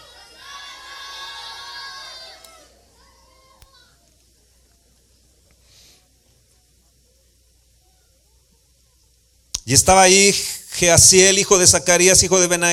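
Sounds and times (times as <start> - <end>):
group of children shouting together in a big room: 0.0 - 4.0
speech: 9.7 - 12.7.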